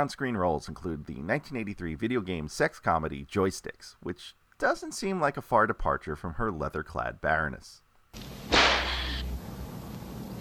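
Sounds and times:
speech: 0.0s - 8.6s
steady low hum: 8.2s - 10.4s
sharp whip crack: 8.5s - 9.0s.

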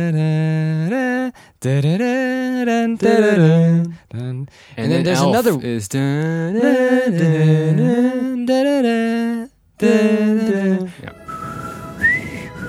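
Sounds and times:
speech: 0.0s - 11.2s
hiss: 0.0s - 12.6s
person whistling a tune: 11.1s - 12.6s.

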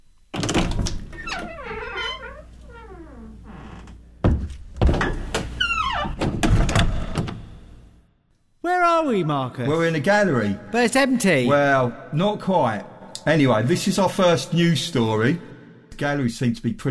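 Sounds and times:
door creaking open with squealing hinges: 0.3s - 7.6s
speech: 9.0s - 16.8s.

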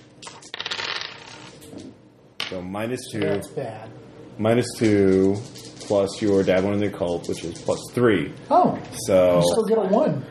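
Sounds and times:
three fate dice rolled across a hard tabletop: 0.2s - 1.6s
speech: 2.5s - 10.2s.

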